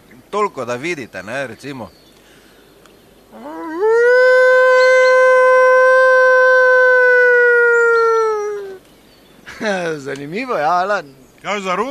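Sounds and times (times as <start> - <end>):
speech: 0.3 - 2.0, 9.6 - 11.8
person imitating a wolf howl: 3.4 - 8.8.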